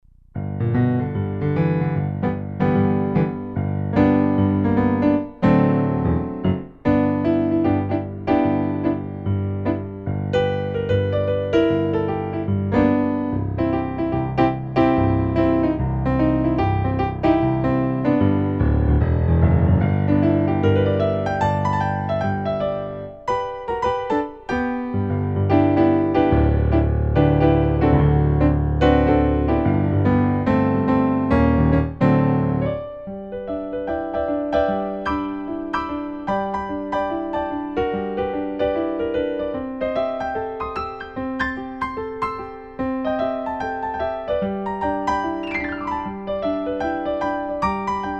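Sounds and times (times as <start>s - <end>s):
intermediate solo piano piece: 0.0s - 48.1s.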